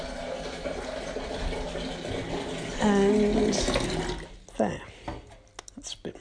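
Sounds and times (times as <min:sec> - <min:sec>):
water pouring into a cooking pot: 0:00.0 - 0:04.5
speech: 0:02.8 - 0:03.9, 0:04.6 - 0:04.9.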